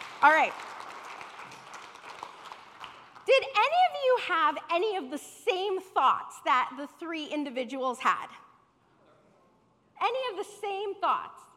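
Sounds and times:
audience applause: 0.0 - 3.2
speech: 0.2 - 0.7, 3.3 - 8.4, 10.0 - 11.4.

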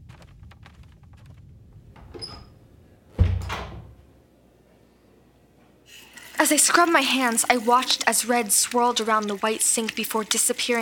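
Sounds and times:
low rumble: 0.0 - 4.3
bedroom door hinge squeak: 2.1 - 2.6
bedroom door thump as it settles: 3.1 - 4.0
speech: 6.4 - 10.8.

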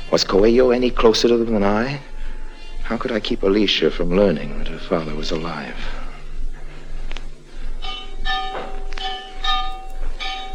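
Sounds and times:
speech: 0.1 - 2.1, 2.9 - 6.0
church bell clanging: 7.8 - 10.5.

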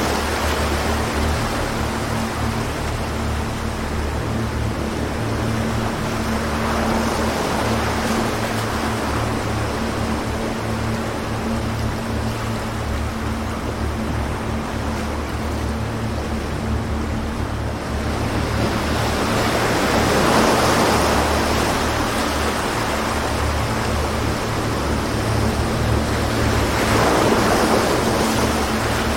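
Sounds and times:
low even hum with a faint droning tone: 0.0 - 29.1
waves washing in: 0.0 - 29.1.

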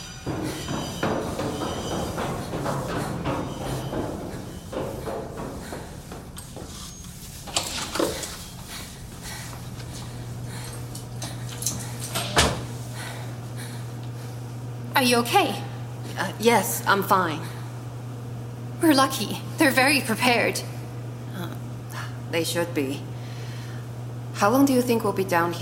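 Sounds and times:
large heavy door opening and closing with a solid thud: 0.0 - 12.8
clunks: 0.0 - 13.2
steady low hum: 0.0 - 25.6
speech: 15.0 - 15.6, 16.2 - 17.5, 18.8 - 20.7, 22.3 - 23.1, 24.4 - 25.6.

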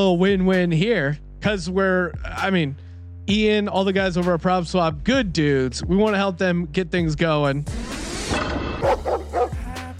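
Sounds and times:
speech: 0.0 - 7.9
dog barking and yipping: 8.8 - 9.7.

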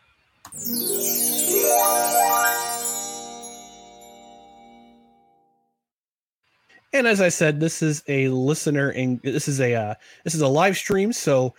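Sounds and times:
bright chiming show jingle during a live-streamed show: 0.5 - 5.5
speech: 7.0 - 11.5.

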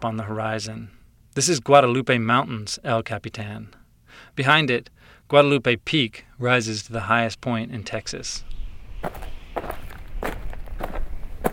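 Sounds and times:
speech: 0.0 - 9.4
footsteps crunching over bleached white limestone rocks while hiking up a dry wash: 9.0 - 11.5.

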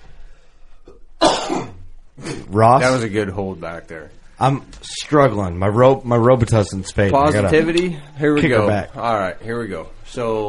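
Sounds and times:
stifled cough: 1.2 - 2.5
speech: 2.4 - 10.4.

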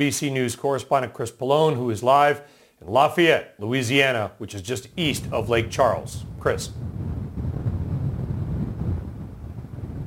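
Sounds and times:
speech: 0.0 - 7.0
hurricane wind gusts buffeting the microphone in Lafayette Louisiana: 4.7 - 10.0.

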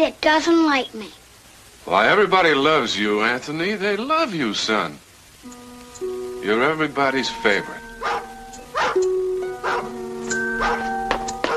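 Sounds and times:
speech: 0.0 - 1.2, 1.8 - 8.2
sustained musical tones: 5.3 - 11.5
collie dog barking: 8.0 - 9.0, 9.6 - 9.9, 10.6 - 11.5.

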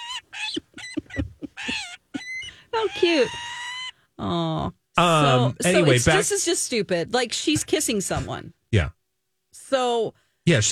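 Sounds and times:
laughter: 0.0 - 3.7, 5.0 - 6.4
peregrine falcon screeching calls: 0.0 - 4.0
speech: 2.8 - 3.5, 4.2 - 9.0, 9.7 - 10.7.

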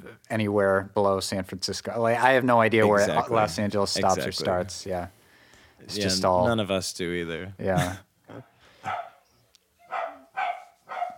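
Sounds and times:
speech: 0.0 - 5.2, 5.8 - 9.0
excited dogs barking: 8.8 - 9.2, 9.8 - 11.1.

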